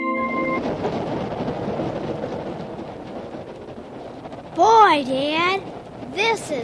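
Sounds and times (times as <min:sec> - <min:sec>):
train whistle: 0:00.0 - 0:00.7
rumble of rolling train cars pulling out of the station: 0:00.0 - 0:06.6
speech: 0:04.6 - 0:06.6.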